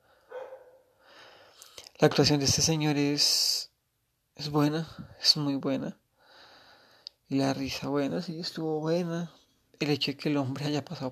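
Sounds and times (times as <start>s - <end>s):
dog barking faintly with yelps: 0.3s - 0.9s
speech: 2.0s - 3.7s, 4.4s - 6.0s, 7.3s - 11.1s.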